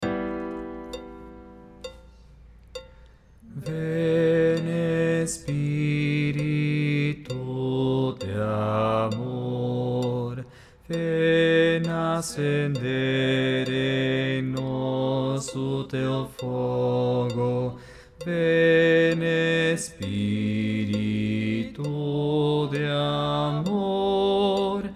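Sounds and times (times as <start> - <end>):
bass voice singing: 3.5 - 24.9.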